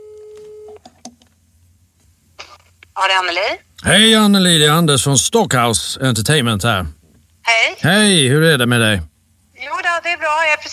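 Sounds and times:
telephone ringback tone while a call is placed: 0.0 - 0.8
speech: 3.0 - 10.7.

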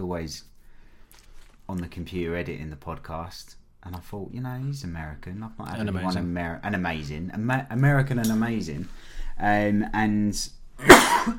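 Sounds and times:
speech: 0.0 - 0.5, 1.1 - 11.3
man coughing: 10.8 - 11.3.

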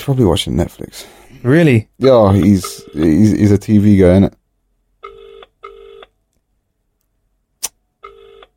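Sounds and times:
speech: 0.0 - 4.4
outgoing phone call ringing tone: 2.3 - 3.3, 5.0 - 6.1, 8.0 - 8.5.

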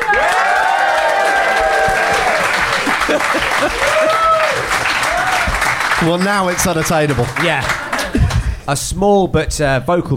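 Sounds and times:
cheers and whoops: 0.0 - 5.7
live audience applause: 0.0 - 8.6
laughter: 1.1 - 5.1, 6.7 - 8.6
speech: 3.3 - 4.0, 6.0 - 7.8, 8.7 - 10.1.

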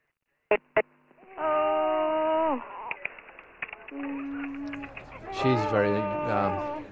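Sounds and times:
speech: 0.5 - 1.8, 5.4 - 6.7
distressed mother wailing: 1.2 - 2.8, 4.1 - 6.8
infant crying: 1.2 - 3.0, 4.0 - 6.8
sharp clicks: 2.9 - 5.2.

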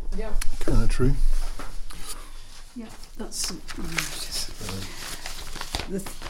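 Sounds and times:
speech: 0.2 - 1.4, 2.8 - 5.1, 5.9 - 6.2
papers rustling and crinkling: 1.3 - 6.2.

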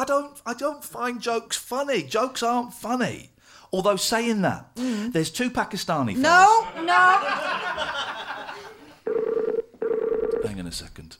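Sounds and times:
speech: 0.0 - 8.4, 10.5 - 11.1
laughter: 6.2 - 9.0
telephone tone as a call is placed: 9.1 - 10.5.

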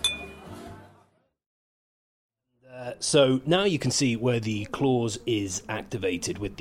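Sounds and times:
glasses clinking in a toast: 0.0 - 0.4
speech: 2.7 - 6.5.

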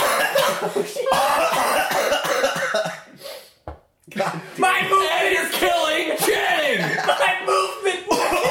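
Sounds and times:
man coughing in a long harsh fit: 0.0 - 3.2, 6.9 - 8.4
laughter: 0.4 - 1.5, 4.6 - 8.4
speech: 0.6 - 2.2.

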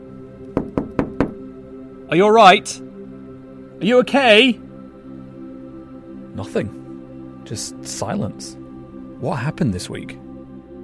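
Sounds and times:
knocking on a glass shop window: 0.5 - 1.4
speech: 2.1 - 2.9, 3.8 - 4.6, 6.4 - 6.8, 7.5 - 8.6, 9.2 - 10.2.

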